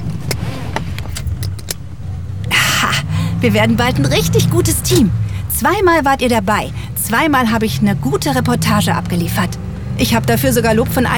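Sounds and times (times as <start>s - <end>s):
keys jingling: 0.0s - 2.0s
car engine rumbling: 0.0s - 11.1s
speech: 3.4s - 11.1s.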